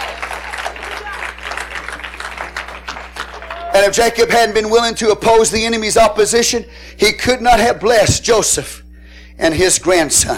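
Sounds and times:
congregation clapping in applause: 0.0s - 4.0s
speech: 3.8s - 8.8s, 9.4s - 10.3s.

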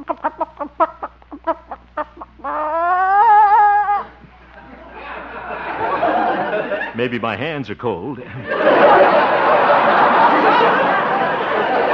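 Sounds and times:
hen clucking while being reached under: 0.0s - 4.2s
laughter: 0.0s - 7.3s, 8.2s - 11.9s
speech: 0.1s - 1.0s, 7.0s - 11.9s.

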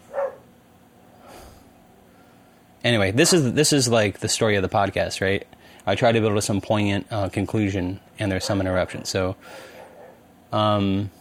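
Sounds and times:
dog barking: 0.0s - 0.5s, 8.4s - 9.0s, 9.7s - 10.2s
speech: 2.8s - 9.8s, 10.5s - 11.1s.

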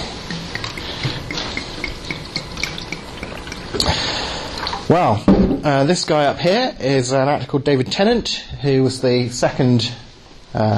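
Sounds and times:
water pouring from a bottle into a glass: 0.5s - 4.9s
speech: 4.9s - 10.7s.

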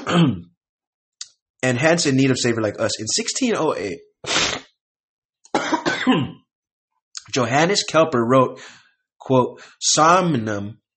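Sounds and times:
person coughing: 0.0s - 0.5s, 5.5s - 6.4s
speech: 0.1s - 0.5s, 1.6s - 4.5s, 6.1s - 6.4s, 7.3s - 10.8s.

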